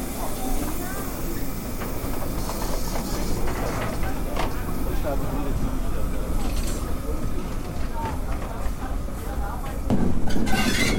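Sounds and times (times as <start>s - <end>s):
faint voices of people riding on the footplate: 0.0s - 10.9s
steam locomotive 58311 rattling past tender first on a station special trip: 0.0s - 10.9s.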